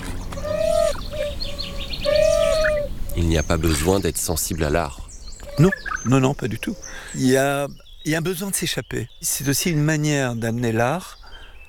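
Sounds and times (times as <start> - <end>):
bird whistling notes outdoors: 0.0 - 8.0
faint high bird chirps: 0.0 - 11.6
speech: 3.2 - 5.0, 5.6 - 11.6.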